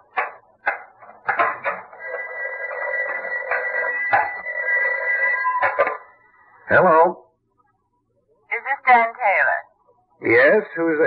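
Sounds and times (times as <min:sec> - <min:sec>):
sharp knocks and thumps: 0:00.0 - 0:02.0, 0:05.6 - 0:06.1
telephone ringing: 0:01.9 - 0:06.2
speech: 0:06.7 - 0:07.2, 0:08.9 - 0:09.5, 0:10.2 - 0:11.0.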